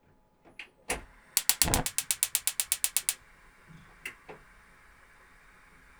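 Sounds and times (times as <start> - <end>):
gas noise: 1.4 - 3.2.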